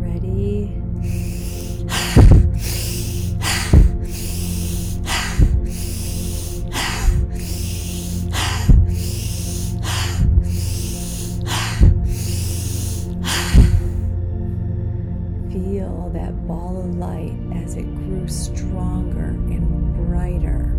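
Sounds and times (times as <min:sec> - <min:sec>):
low hum: 0:00.0 - 0:20.6
deep breaths in through the nose and out through the mouth: 0:01.0 - 0:14.2.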